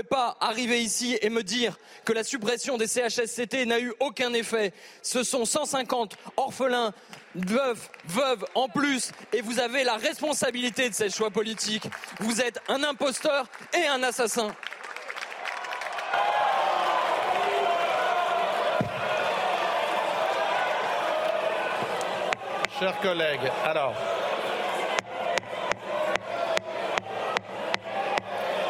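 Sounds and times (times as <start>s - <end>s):
speech: 0.0s - 14.9s, 22.8s - 24.2s
parliament members shouting in a packed chamber: 15.9s - 28.6s.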